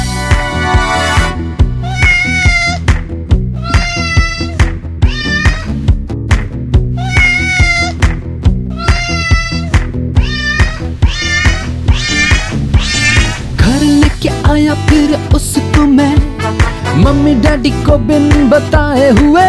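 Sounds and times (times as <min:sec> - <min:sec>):
musical backing with a thumping beat: 0:00.0 - 0:19.4
kitten meowing in short high bending cries: 0:01.8 - 0:02.8, 0:03.6 - 0:05.8, 0:07.0 - 0:08.0, 0:08.7 - 0:13.5
speech: 0:17.6 - 0:19.4.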